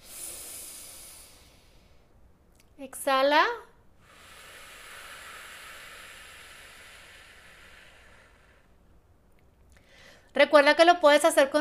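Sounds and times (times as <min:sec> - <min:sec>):
nasal inhale during a guided breathing exercise: 0:00.0 - 0:02.0, 0:04.0 - 0:08.8
speech: 0:02.8 - 0:03.7, 0:10.4 - 0:11.5.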